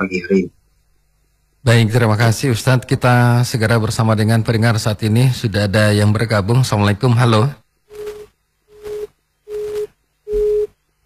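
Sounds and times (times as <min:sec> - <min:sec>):
speech: 0:00.0 - 0:00.6, 0:01.6 - 0:07.6
telephone busy tone after a call is cut off: 0:07.9 - 0:10.8.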